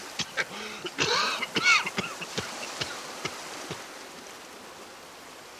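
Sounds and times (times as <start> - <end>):
whale coughing with a grate lodged in its throat: 0.1 - 3.8.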